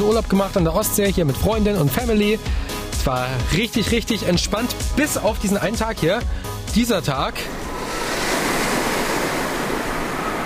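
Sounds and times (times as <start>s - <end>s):
speech: 0.1s - 7.6s
strong gusting wind: 7.2s - 10.4s
heavy surf crashing in a storm surge: 7.3s - 10.4s.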